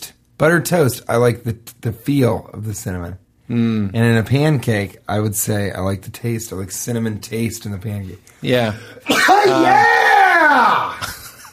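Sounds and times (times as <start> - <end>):
speech: 0.4 - 11.0
person yelling with voice sliding down in pitch: 8.6 - 11.0
person sneezing: 8.7 - 9.7.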